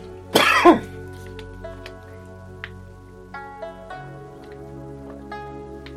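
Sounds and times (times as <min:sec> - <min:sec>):
person coughing: 0:00.3 - 0:00.9.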